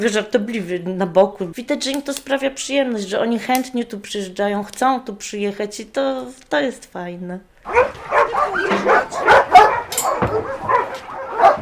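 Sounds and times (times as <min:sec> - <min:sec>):
speech: 0:00.0 - 0:09.4
dogs barking and yipping at a shelter: 0:07.6 - 0:11.5.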